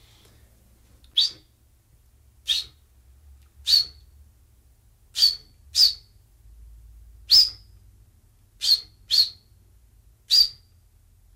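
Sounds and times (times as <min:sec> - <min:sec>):
person whistling an imitation of a chaffinch call: 0:01.2 - 0:01.4, 0:02.5 - 0:02.8, 0:03.7 - 0:04.0, 0:05.2 - 0:06.0, 0:08.6 - 0:09.4.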